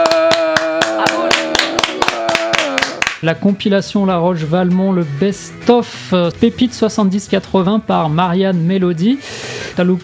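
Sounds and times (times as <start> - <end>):
loud steady rhythmic clapping: 0.0 - 3.5
speech: 3.2 - 10.0.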